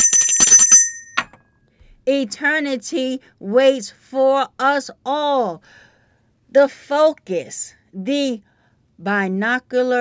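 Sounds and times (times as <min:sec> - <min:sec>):
bright metallic bell ringing: 0:00.0 - 0:01.4
speech: 0:02.1 - 0:05.8, 0:06.5 - 0:09.9.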